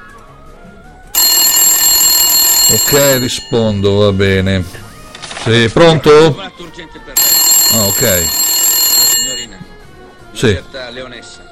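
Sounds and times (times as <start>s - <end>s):
telephone ringing: 1.2s - 4.7s, 7.2s - 9.8s
speech: 2.7s - 4.8s, 5.4s - 7.0s, 7.7s - 8.4s, 10.4s - 11.4s.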